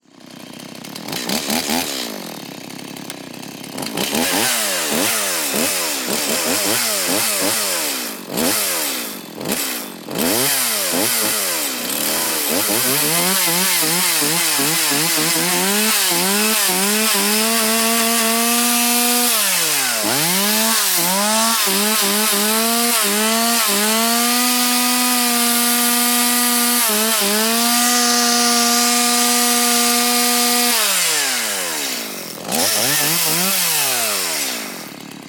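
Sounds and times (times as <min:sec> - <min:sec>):
small gas chainsaw engine pressing and sawing at high rpm: 0:00.0 - 0:35.2.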